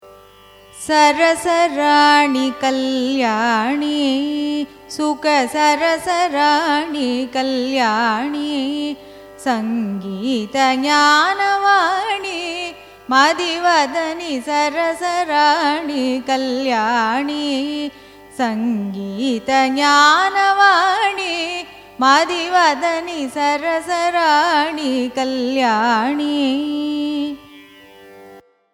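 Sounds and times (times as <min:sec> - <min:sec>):
carnatic music in raga surutti: 0:00.0 - 0:28.7.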